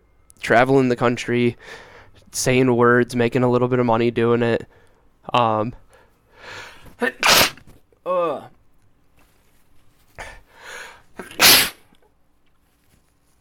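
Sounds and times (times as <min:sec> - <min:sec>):
speech: 0:00.5 - 0:05.8, 0:06.4 - 0:07.5
wet sneezes: 0:07.0 - 0:07.7, 0:11.2 - 0:11.9
light shuffling: 0:09.1 - 0:10.2, 0:12.4 - 0:13.3.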